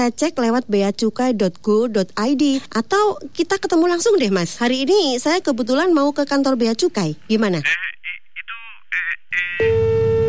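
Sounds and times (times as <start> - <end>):
speech: 0.0 - 7.9, 9.4 - 9.8
telephone busy tone after the caller hangs up: 9.6 - 10.2.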